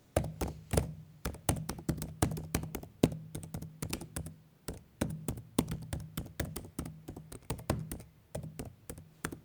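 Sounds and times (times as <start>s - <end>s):
typing on laptop keyboard: 0.2s - 9.4s.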